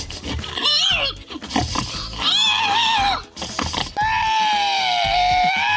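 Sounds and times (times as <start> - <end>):
man imitating a pig's squeals and grunts at a pig-imitation contest in Estonia: 0.5 - 1.2, 2.1 - 5.7.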